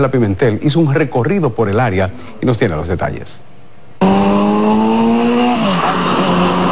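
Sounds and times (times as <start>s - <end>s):
speech: 0.0s - 3.5s
loud engine accelerating with rising whine: 4.0s - 6.7s.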